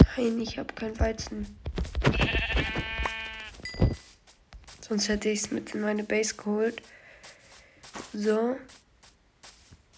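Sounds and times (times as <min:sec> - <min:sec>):
speech: 0:00.2 - 0:02.4, 0:04.9 - 0:07.0, 0:08.2 - 0:08.8
video game sheep bleat: 0:02.0 - 0:03.6.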